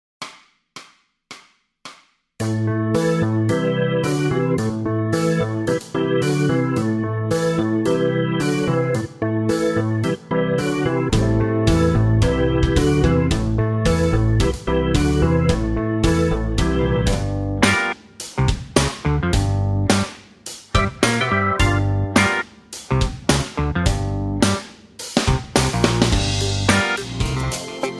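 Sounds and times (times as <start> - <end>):
blues funk guitar: 2.5 - 27.9.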